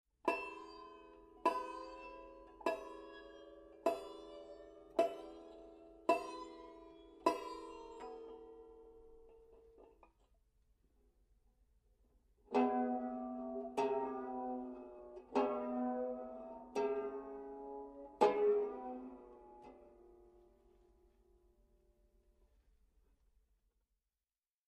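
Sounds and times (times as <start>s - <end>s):
bottleneck slide banjo with overtones: 0.3s - 9.9s, 12.5s - 20.9s.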